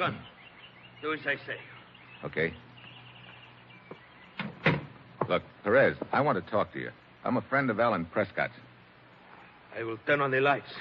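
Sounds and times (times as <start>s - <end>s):
speech: 0.0s - 0.4s, 1.0s - 2.7s, 5.3s - 8.7s, 9.8s - 10.7s
faint steady hum: 0.0s - 10.7s
door being shut quietly: 4.3s - 5.0s.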